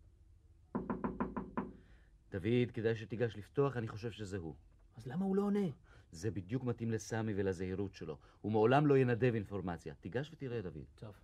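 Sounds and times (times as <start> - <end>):
knocking on a door: 0.7 - 1.8
speech: 2.3 - 11.2.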